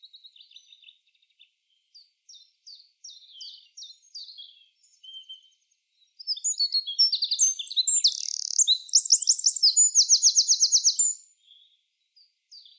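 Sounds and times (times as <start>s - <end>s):
Eurasian wren Troglodytes troglodytes singing: 6.2s - 11.3s.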